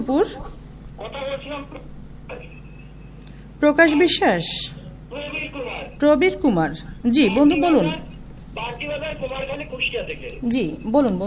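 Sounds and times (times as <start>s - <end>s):
speech: 0.0s - 2.6s, 3.6s - 11.2s
narrow line-filtered telephone voice on a radio phone-in: 1.0s - 3.0s, 3.9s - 6.1s, 6.8s - 10.5s.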